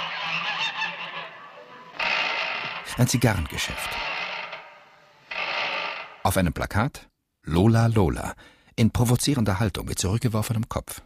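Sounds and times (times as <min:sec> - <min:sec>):
geese cackling and honking while thrown into a cage in an old-town alley: 0:00.0 - 0:02.8
speech: 0:03.0 - 0:04.2, 0:06.3 - 0:11.0.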